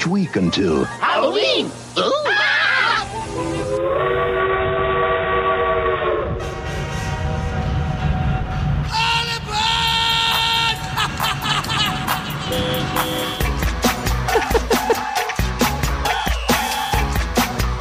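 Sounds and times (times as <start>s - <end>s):
speech: 0.0s - 2.3s
train whistle blowing in long loud harmonic tones: 3.3s - 10.9s, 12.4s - 13.6s
train rumbling and chugging on rails: 3.3s - 17.7s
laughter: 10.3s - 13.0s, 14.0s - 15.4s.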